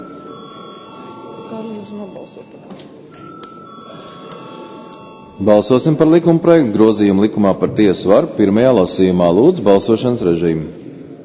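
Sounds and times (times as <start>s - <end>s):
electric bell ringing to call a parliamentary vote: 0.0s - 6.2s
faint murmuring voices: 0.0s - 7.2s
speech: 1.5s - 3.3s, 5.4s - 10.9s.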